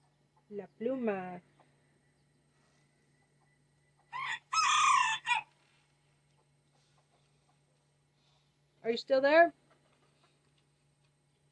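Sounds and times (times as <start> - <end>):
speech: 0.5 - 1.6, 8.9 - 9.6
rooster crowing: 4.1 - 5.5.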